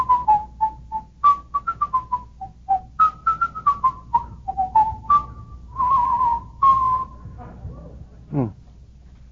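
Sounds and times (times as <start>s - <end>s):
person whistling a lively melody: 0.0s - 7.3s.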